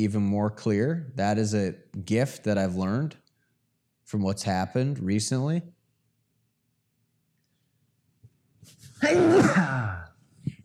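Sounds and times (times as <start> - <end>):
speech: 0.0 - 3.2, 4.1 - 5.8
single loud sneeze: 8.8 - 10.2.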